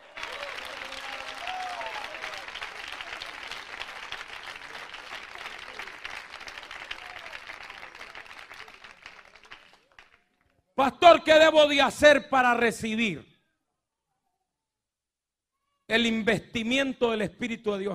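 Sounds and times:
church congregation applauding: 0:00.0 - 0:10.5
speech: 0:10.8 - 0:13.3, 0:15.9 - 0:17.9.

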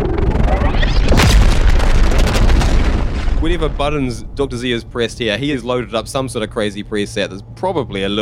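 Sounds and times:
plasma gun firing a bolt in a video game: 0:00.0 - 0:04.8
dense noisy rumble: 0:00.0 - 0:08.1
speech: 0:03.6 - 0:08.1.

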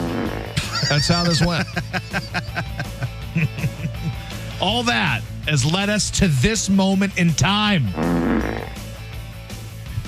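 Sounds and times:
fart: 0:00.0 - 0:00.7, 0:07.9 - 0:08.9
laughter: 0:00.6 - 0:04.5
speech: 0:00.9 - 0:02.7, 0:03.4 - 0:03.8, 0:04.6 - 0:08.2.

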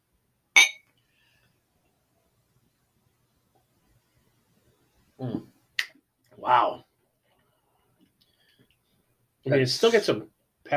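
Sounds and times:
glasses clinking in a toast: 0:00.6 - 0:00.9
speech: 0:09.5 - 0:10.7.

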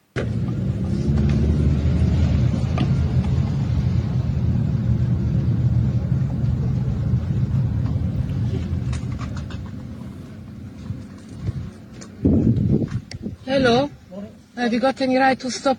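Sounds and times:
road traffic at a traffic checkpoint in Oxford, Britain: 0:00.0 - 0:15.7
vehicle engines idling and moving slowly at a traffic checkpoint: 0:00.0 - 0:15.7
speech: 0:14.6 - 0:15.7.

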